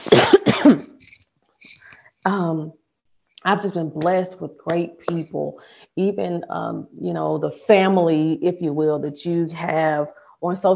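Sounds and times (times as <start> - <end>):
person coughing harshly: 0.0 - 1.1
speech: 2.3 - 2.8, 3.4 - 10.7.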